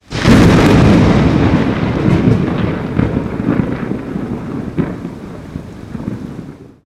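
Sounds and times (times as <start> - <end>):
thunder: 0.0 - 6.8.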